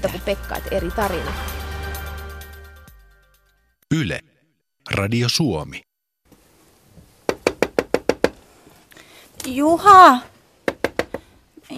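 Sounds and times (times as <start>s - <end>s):
speech: 0.0s - 1.6s, 3.9s - 4.3s, 4.9s - 5.9s, 9.4s - 10.3s
knocking on the door of an accessible toilet: 7.3s - 8.4s, 10.6s - 11.3s.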